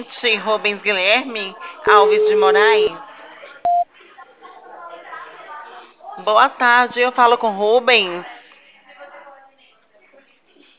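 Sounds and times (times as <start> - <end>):
speech: 0.0 - 3.1, 6.2 - 8.3
talking on the telephone line: 0.0 - 10.7
telephone keypad tone: 1.9 - 2.9.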